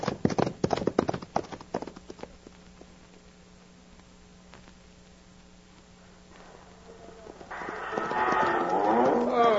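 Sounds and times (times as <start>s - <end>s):
galloping ponies' hoofbeats on a dusty trail: 0.0s - 2.5s, 6.8s - 9.5s
long bellowing animal call: 7.0s - 9.5s.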